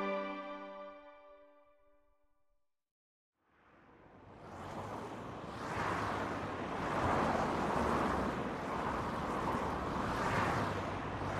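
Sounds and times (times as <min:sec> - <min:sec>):
individual vehicles rushing past on a highway: 0:03.7 - 0:11.3
steady dense roar of highway traffic: 0:03.9 - 0:11.3.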